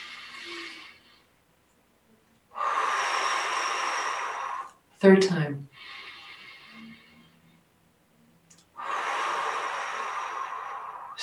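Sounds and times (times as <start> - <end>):
quick deep inhalations during a guided breathing exercise: 0.0 - 1.4, 2.5 - 4.8, 5.8 - 7.5, 8.5 - 11.2
speech: 5.0 - 6.0.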